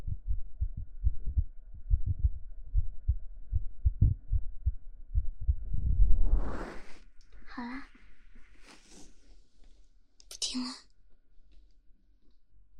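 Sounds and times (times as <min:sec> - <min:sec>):
fast heartbeat heard against a person's chest: 0:00.0 - 0:06.9
fabric rustling: 0:08.0 - 0:09.7.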